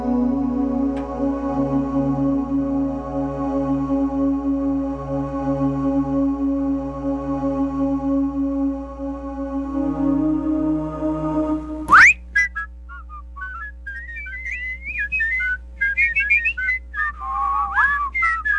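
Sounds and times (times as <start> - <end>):
steady droning tone: 0.0 - 12.4
whistled melody of short bouncing notes: 11.9 - 18.5.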